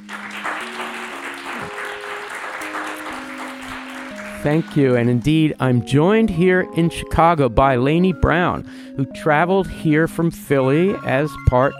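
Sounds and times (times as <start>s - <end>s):
live audience in Chicago clapping to welcome guests at a recording: 0.0s - 5.7s
speech: 4.4s - 11.7s.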